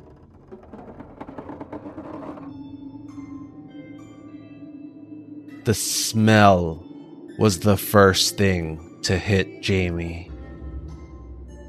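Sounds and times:
door creaking open: 0:00.0 - 0:02.5
rattly scraping: 0:00.0 - 0:02.5
speech: 0:05.6 - 0:10.3.

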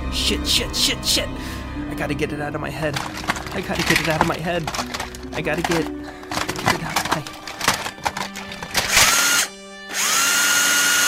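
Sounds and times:
speech: 0:00.1 - 0:07.3
power drill whirring: 0:07.5 - 0:11.0.

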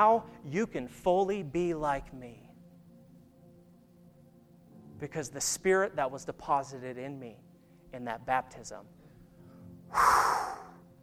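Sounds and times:
speech: 0:00.0 - 0:02.5, 0:05.0 - 0:09.0, 0:09.9 - 0:10.2
forceful breath exhaled onto listeners during a sermon: 0:09.9 - 0:10.8.

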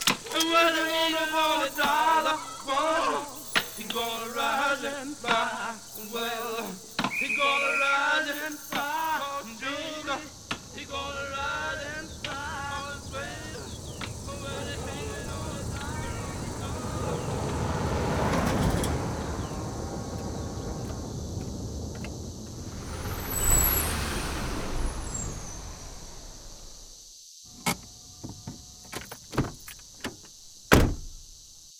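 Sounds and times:
armored truck air brakes hissing: 0:00.0 - 0:27.0
armored truck engine rumbling into a prison driveway: 0:00.0 - 0:27.0
sharp metallic clanks and thuds: 0:27.7 - 0:31.3.

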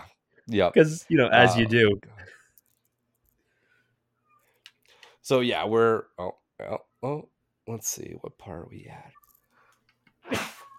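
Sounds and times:
speech: 0:00.5 - 0:02.1, 0:05.3 - 0:09.2
person sneezing: 0:10.2 - 0:10.7.

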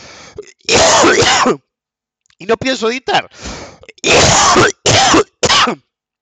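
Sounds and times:
person coughing harshly: 0:00.4 - 0:01.6, 0:03.7 - 0:05.9
throat clearing: 0:00.4 - 0:01.6, 0:03.8 - 0:05.9
speech: 0:01.4 - 0:01.6, 0:02.4 - 0:04.8, 0:05.6 - 0:05.8.

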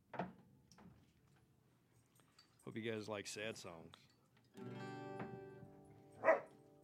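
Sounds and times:
speech: 0:02.8 - 0:04.8
puppy yipping and whining: 0:06.2 - 0:06.5.

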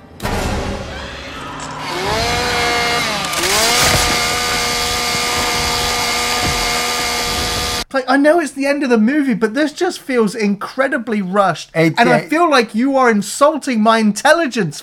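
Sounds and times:
chainsaw engine starting and revving: 0:01.8 - 0:07.8
speech: 0:08.0 - 0:14.8.

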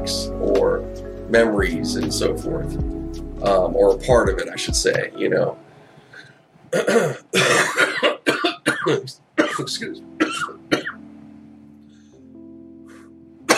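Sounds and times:
speech: 0:00.0 - 0:00.6, 0:01.3 - 0:05.6, 0:06.7 - 0:07.9, 0:08.9 - 0:10.7
breathy sounds: 0:05.6 - 0:06.5
harsh coughs: 0:06.7 - 0:11.0
throat-clearing bursts: 0:06.7 - 0:11.0.

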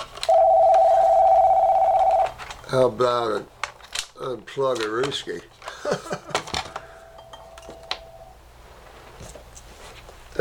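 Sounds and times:
mobile phone electronic tone: 0:00.3 - 0:02.4, 0:06.9 - 0:08.4
speech: 0:02.7 - 0:03.6, 0:04.2 - 0:06.4.

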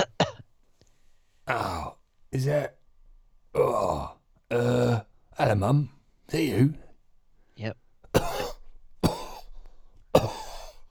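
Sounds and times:
person coughing deliberately as a coded signal: 0:00.0 - 0:00.5, 0:08.2 - 0:09.5, 0:10.2 - 0:10.8
speech: 0:01.5 - 0:02.8, 0:03.6 - 0:06.8, 0:07.6 - 0:07.8.

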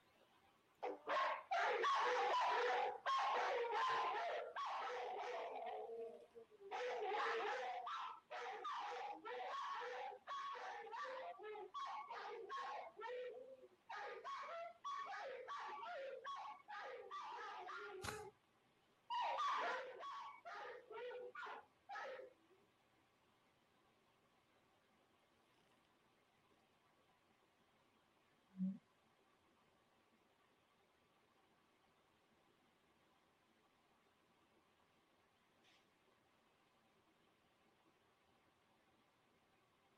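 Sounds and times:
dogs barking and yelping: 0:00.8 - 0:18.3, 0:19.1 - 0:22.4.

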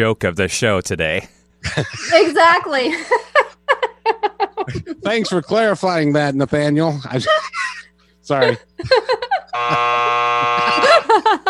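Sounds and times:
speech: 0:00.0 - 0:03.4, 0:04.1 - 0:11.4
laughter: 0:01.6 - 0:05.8, 0:06.9 - 0:11.4
loud harsh game show buzzer: 0:09.5 - 0:11.3.

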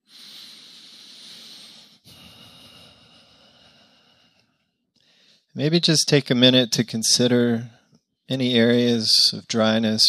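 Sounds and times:
slow deep breath drawn in and let out: 0:00.0 - 0:05.6
speech: 0:05.6 - 0:10.0.

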